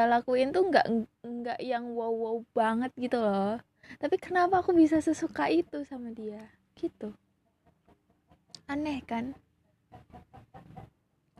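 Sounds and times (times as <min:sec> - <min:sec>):
speech: 0:00.0 - 0:07.2, 0:08.7 - 0:10.9
chicken clucking: 0:07.4 - 0:11.3.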